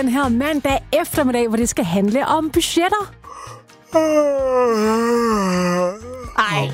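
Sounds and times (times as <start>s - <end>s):
speech: 0.0s - 6.7s
long loud yawn: 3.3s - 6.4s.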